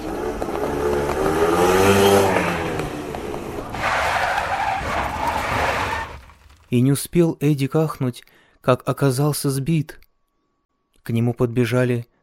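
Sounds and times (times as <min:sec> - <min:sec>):
motorcycle engine roaring past at high speed: 0:00.0 - 0:04.2
loud harsh motorcycle tire skid: 0:00.0 - 0:06.7
speech: 0:06.7 - 0:10.0, 0:11.0 - 0:12.1.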